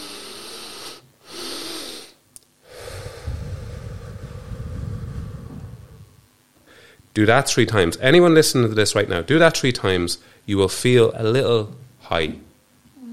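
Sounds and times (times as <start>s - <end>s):
long prolonged rushing exhale in a breathing exercise: 0.0s - 7.0s
double inhale in a breathing exercise: 0.0s - 7.1s
speech: 7.2s - 12.5s.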